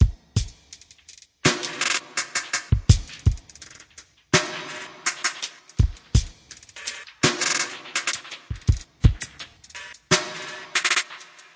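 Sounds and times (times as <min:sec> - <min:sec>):
glitchy snare drum at 83 bpm: 0:00.0 - 0:11.5.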